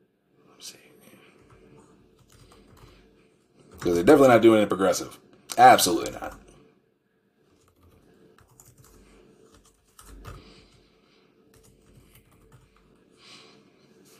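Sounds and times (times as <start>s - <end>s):
speech: 0.6s - 0.8s, 3.8s - 6.4s
laptop keyboard typing: 1.4s - 3.1s, 3.7s - 4.2s, 7.5s - 10.8s, 11.5s - 13.0s.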